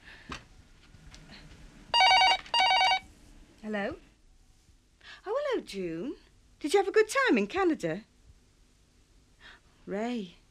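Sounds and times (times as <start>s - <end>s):
telephone ringing with bright trilling bell tones: 2.0s - 3.1s
speech: 3.7s - 4.1s, 5.6s - 8.1s, 9.9s - 10.4s.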